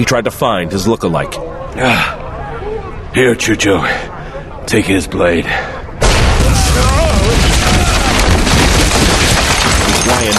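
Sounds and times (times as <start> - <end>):
speech: 0.0 - 2.2, 3.1 - 4.1, 4.7 - 5.8
crashing debris: 6.0 - 10.3
rock ceiling caving in: 6.0 - 10.3.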